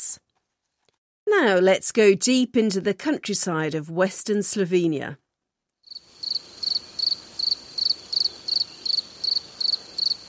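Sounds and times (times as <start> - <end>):
speech: 1.3 - 5.2
crickets and grasshoppers chirping outdoors: 5.9 - 10.2.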